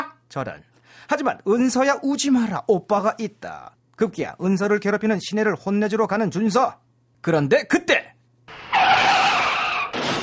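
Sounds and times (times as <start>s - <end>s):
speech: 0.4s - 8.1s
car tires screeching in a skid during a traffic accident: 8.5s - 10.2s.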